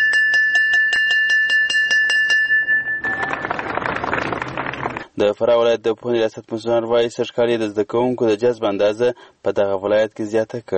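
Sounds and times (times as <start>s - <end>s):
school bell rung at a new school year opening ceremony: 0.0s - 3.6s
dense noisy clatter of crowd sound: 3.0s - 5.1s
speech: 5.2s - 10.7s.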